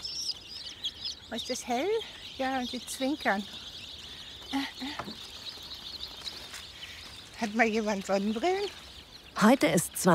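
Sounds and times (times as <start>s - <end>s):
young chicks peeping in the sunshine: 0.0s - 10.1s
speech: 1.3s - 3.7s, 4.5s - 5.3s, 7.4s - 8.8s, 9.4s - 10.1s.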